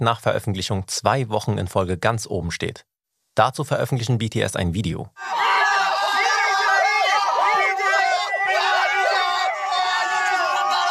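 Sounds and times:
speech: 0:00.0 - 0:05.4
group of excited voices shrieking and cheering: 0:05.2 - 0:10.9.

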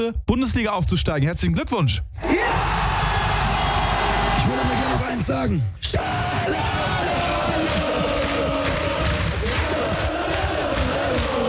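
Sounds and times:
speech: 0:00.0 - 0:02.9, 0:04.4 - 0:06.9
football stadium crowd cheering in celebration of promotion: 0:02.2 - 0:05.3, 0:05.9 - 0:11.4.

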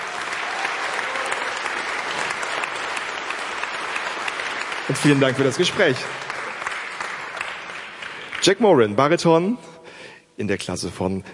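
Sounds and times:
audience applause: 0:00.0 - 0:08.6
speech: 0:04.9 - 0:06.3, 0:08.4 - 0:09.7, 0:10.4 - 0:11.3.

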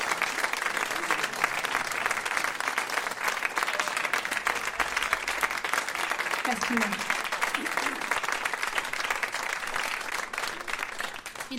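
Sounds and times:
audience applause at an evening concert: 0:00.0 - 0:11.5
speech: 0:06.5 - 0:08.0.

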